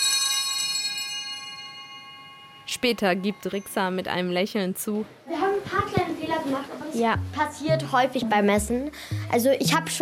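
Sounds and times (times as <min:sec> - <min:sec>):
altar bells rung at Mass as the priest raises the offerings: 0:00.0 - 0:04.6
speech: 0:02.8 - 0:10.0.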